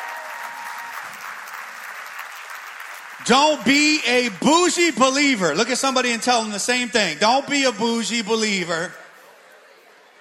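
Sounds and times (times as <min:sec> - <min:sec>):
crowd applauding for worship team: 0:00.0 - 0:05.5
speech: 0:03.2 - 0:09.0.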